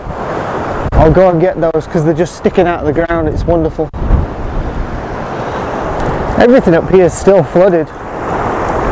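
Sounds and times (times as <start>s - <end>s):
strong wind from a storm buffeting microphone on an open moor: 0.0s - 8.9s
speech: 1.0s - 4.0s, 6.4s - 8.0s.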